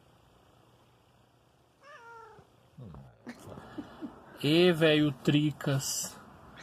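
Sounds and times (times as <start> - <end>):
cat meowing: 1.8 - 2.5
speech: 4.4 - 6.2.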